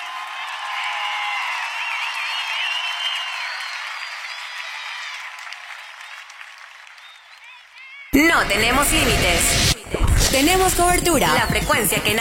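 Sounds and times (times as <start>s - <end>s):
crowd applauding: 0.0s - 8.2s
speech: 8.2s - 12.1s.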